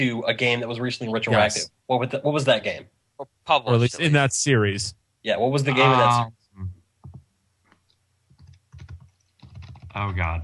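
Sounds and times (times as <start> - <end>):
speech: 0.0 - 6.8, 10.0 - 10.4
typing on a computer keyboard: 8.3 - 10.4.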